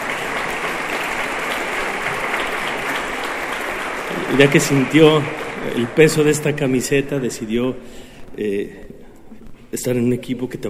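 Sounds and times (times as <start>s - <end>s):
steady dense applause of many hands clapping: 0.0s - 7.5s
speech: 4.3s - 9.0s, 9.7s - 10.6s.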